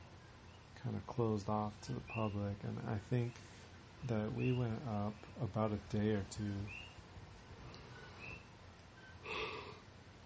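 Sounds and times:
quiet noise: 0.0s - 10.2s
speech: 0.8s - 6.9s
soft breathy yawn: 9.2s - 9.9s.

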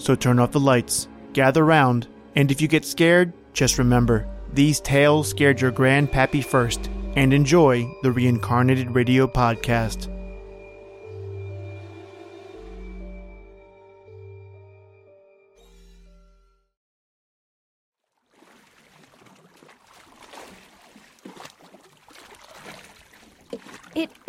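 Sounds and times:
speech: 0.0s - 10.1s, 24.0s - 24.2s
sustained musical chord: 0.0s - 16.4s
oars of a rowboat carrying a passenger splashing through water: 18.0s - 24.2s.

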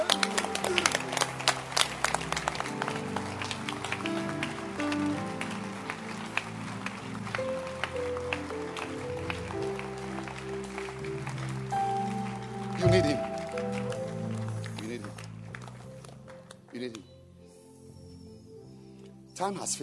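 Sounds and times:
audience clapping hands: 0.0s - 17.1s
speech: 19.4s - 19.8s.

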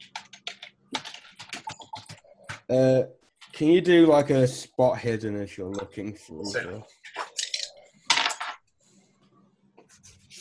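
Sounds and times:
typing on a computer keyboard: 0.0s - 2.6s
speech: 2.7s - 7.0s.

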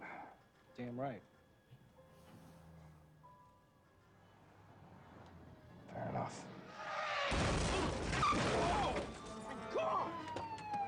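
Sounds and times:
speech: 0.8s - 1.4s, 6.2s - 6.6s
car collision with crunching metal and scattering debris: 7.0s - 9.8s.

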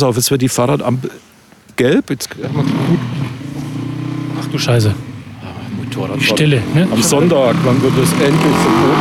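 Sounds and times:
speech: 0.0s - 3.4s, 4.5s - 5.1s, 6.0s - 8.9s
motorcycle engine revving past: 2.4s - 8.9s.

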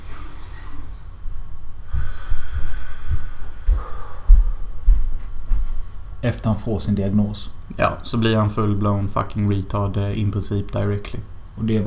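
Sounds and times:
slow heavy breathing in and out through the nose: 0.0s - 4.8s
speech: 6.2s - 11.8s.

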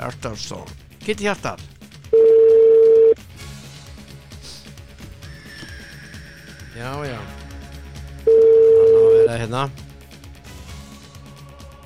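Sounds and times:
speech: 0.0s - 1.8s, 6.8s - 7.4s, 9.3s - 9.8s
telephone dial tone while placing a call: 2.2s - 3.2s, 8.3s - 9.3s.

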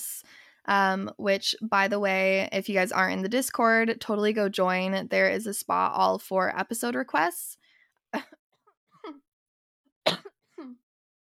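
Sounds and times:
speech: 0.7s - 8.3s
sharp coughs with raspy throaty catch: 10.1s - 10.8s.

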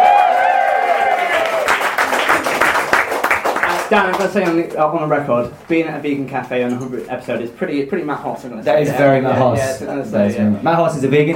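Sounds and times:
live audience at a vegan cafe whooping and cheering: 0.0s - 3.8s
live audience at a vegan cafe applauding: 0.0s - 4.7s
speech: 3.9s - 11.3s.

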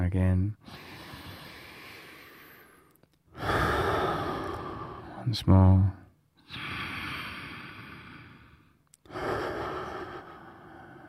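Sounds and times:
deep breathing during a guided relaxation exercise, exhaling through the mouth: 0.6s - 5.2s, 6.4s - 11.0s
speech: 5.3s - 6.0s.

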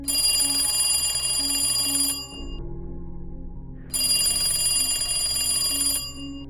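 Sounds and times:
old telephone ringing inside a house with metallic bell: 0.0s - 2.6s, 3.9s - 6.4s.

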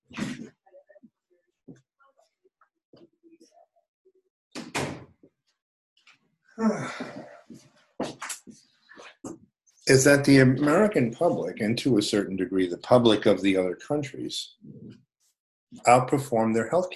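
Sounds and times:
door being shut with solid thumps: 4.6s - 5.1s
speech: 6.6s - 7.2s, 9.9s - 14.7s, 15.9s - 16.9s.

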